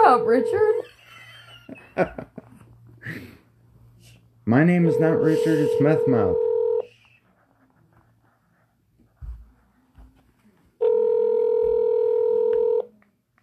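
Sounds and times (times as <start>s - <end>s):
loud steady electronic telephone tone: 0.0s - 0.8s, 4.9s - 6.9s, 10.8s - 12.9s
speech: 0.3s - 0.9s, 1.7s - 2.3s, 4.5s - 6.5s.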